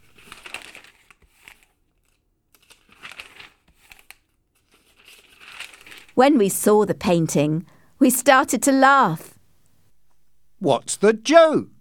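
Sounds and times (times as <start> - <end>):
stiff brown paper crinkling and tearing as it is pulled off a painting: 0.0 - 6.2
speech: 6.2 - 9.3, 10.6 - 11.8.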